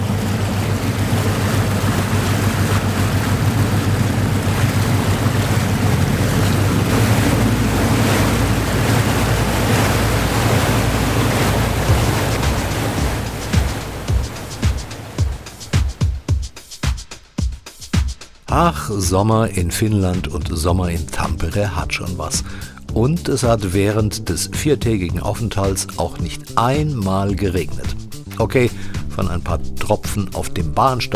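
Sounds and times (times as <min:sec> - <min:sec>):
wind on the water in summer near Tampere, Finland: 0:00.0 - 0:16.0
gusty buffeting thumps: 0:00.0 - 0:16.5
wash from the waves of a boat casting off: 0:00.0 - 0:16.9
speech: 0:18.6 - 0:31.1.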